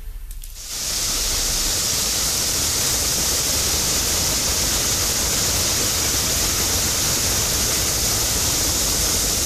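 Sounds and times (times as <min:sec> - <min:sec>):
water gushing from a burst water main: 0:00.6 - 0:09.4.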